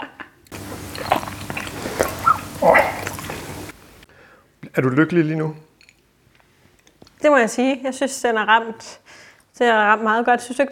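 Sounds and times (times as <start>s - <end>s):
noisy chewing and biting while tasting food: 0.5s - 3.8s
speech: 4.8s - 5.7s, 7.2s - 10.6s.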